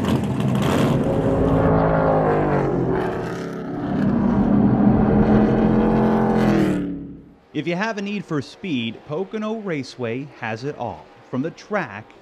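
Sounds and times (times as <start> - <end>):
stock car engine roaring on a race track: 0.0 - 7.5
speech: 7.6 - 12.2.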